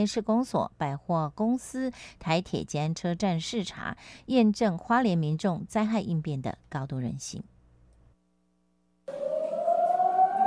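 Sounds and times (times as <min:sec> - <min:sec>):
speech: 0:00.0 - 0:07.5
air raid drill warning siren wailing: 0:09.1 - 0:10.4.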